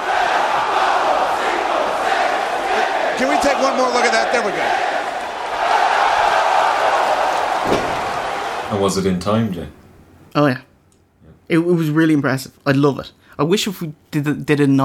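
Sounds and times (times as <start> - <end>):
large wrestling crowd chanting a count in Spanish: 0.0 - 8.7
speech: 3.2 - 4.9, 8.7 - 10.6, 11.5 - 14.8
sharp impact of turnbuckle punches: 7.6 - 8.4.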